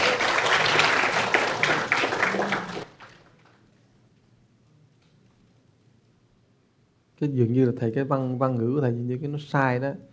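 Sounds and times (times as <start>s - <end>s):
crowd applause: 0.0s - 3.5s
speech: 7.2s - 10.1s.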